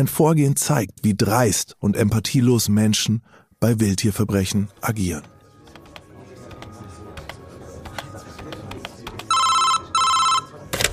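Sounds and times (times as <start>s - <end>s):
speech: 0.0s - 5.3s
telephone ringing with a call to the police: 9.3s - 10.9s.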